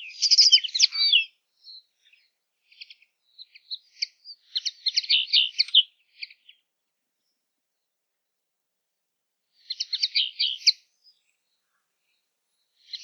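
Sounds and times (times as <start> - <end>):
common linnet singing in twittery phrases: 0.0 - 6.7, 9.6 - 12.2, 12.8 - 13.0.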